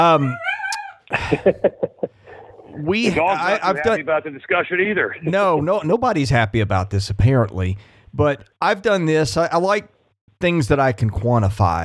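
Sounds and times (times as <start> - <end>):
speech: 0.0 - 0.5, 1.1 - 11.8
dog whining: 0.0 - 1.1
dog yelping: 0.2 - 1.1
laughter: 1.1 - 3.8.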